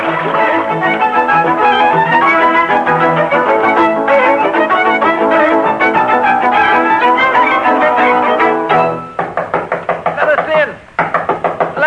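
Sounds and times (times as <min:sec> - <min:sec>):
music: 0:00.0 - 0:10.6
loud rapid knocking on a door: 0:08.7 - 0:11.8.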